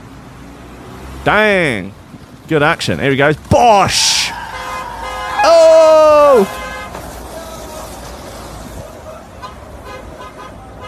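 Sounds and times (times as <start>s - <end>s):
busy road traffic: 0.0s - 10.8s
speech: 1.2s - 4.4s, 5.4s - 6.6s
car horn tooting: 4.2s - 7.3s, 9.4s - 10.8s.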